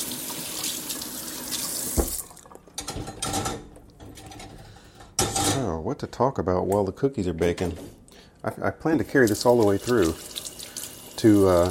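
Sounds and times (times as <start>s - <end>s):
water running from a kitchen tap while rinsing something off: 0.0s - 3.0s, 9.0s - 11.6s
speech: 5.6s - 10.3s, 11.2s - 11.6s.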